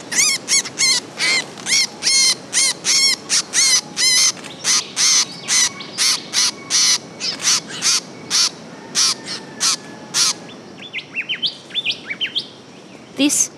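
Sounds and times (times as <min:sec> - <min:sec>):
young blackbird calling agitatedly in a mist net: 0:00.0 - 0:10.4
other birds chirping faintly: 0:00.0 - 0:13.5.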